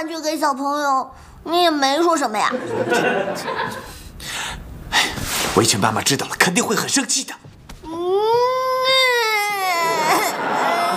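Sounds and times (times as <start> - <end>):
speech: 0.0 - 4.0, 5.1 - 8.4
laughter: 2.5 - 3.9, 9.8 - 10.9
young boy crying in a loud wail: 7.8 - 10.9.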